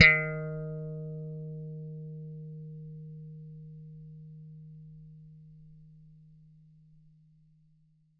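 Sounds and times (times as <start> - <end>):
80s plucked bass note D sharp 3: 0.0 - 4.8.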